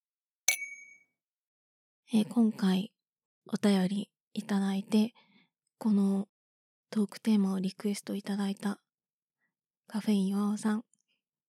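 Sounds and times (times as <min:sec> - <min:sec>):
glasses clinking in a toast: 0:00.5 - 0:01.0
speech: 0:02.1 - 0:02.9, 0:03.5 - 0:06.3, 0:06.9 - 0:08.8, 0:09.9 - 0:10.9.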